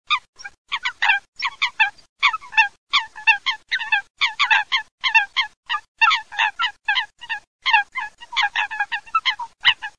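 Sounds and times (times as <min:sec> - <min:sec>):
Fulica atra coot calling: 0:00.1 - 0:09.9.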